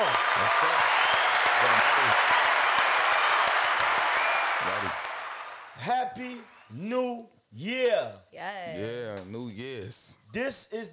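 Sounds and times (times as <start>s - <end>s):
speech: 0.0s - 1.0s, 1.6s - 2.4s, 5.8s - 10.9s
person calling out or cheering: 0.0s - 5.1s, 8.7s - 9.5s
steady dense loud applause: 0.0s - 6.5s.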